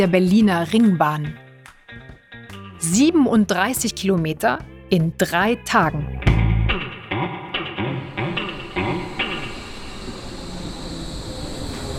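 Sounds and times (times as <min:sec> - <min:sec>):
speech: 0:00.0 - 0:01.4, 0:02.8 - 0:06.3
commuter train arriving at station platform: 0:07.9 - 0:11.9.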